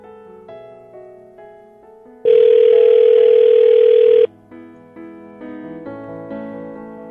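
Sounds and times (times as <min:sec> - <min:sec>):
phone ringback tone on an outgoing call: 0:02.3 - 0:04.3.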